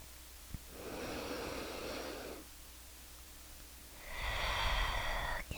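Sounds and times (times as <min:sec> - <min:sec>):
deep breathing: 0:00.7 - 0:02.5, 0:04.0 - 0:05.4.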